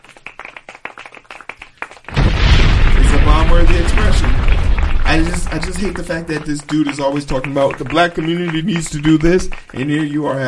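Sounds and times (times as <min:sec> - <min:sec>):
dense applause-like noise: 0:00.0 - 0:10.4
scattered sharp claps: 0:00.0 - 0:10.4
crowd-like roar: 0:02.2 - 0:06.7
speech: 0:03.4 - 0:10.4.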